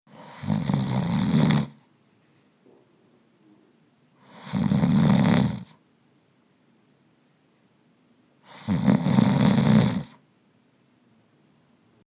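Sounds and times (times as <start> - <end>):
snoring: 0.1 - 1.8, 4.2 - 5.8, 8.4 - 10.2.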